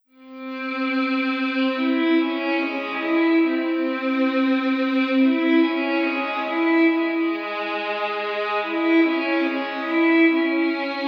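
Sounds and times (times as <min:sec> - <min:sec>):
violin: 0:00.2 - 0:11.0.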